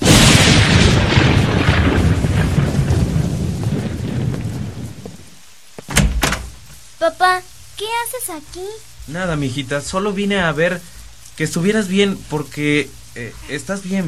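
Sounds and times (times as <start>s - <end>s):
loud roll of thunder rumbling: 0.0s - 5.4s
steady hiss of rain: 0.0s - 14.0s
speech: 7.1s - 14.0s.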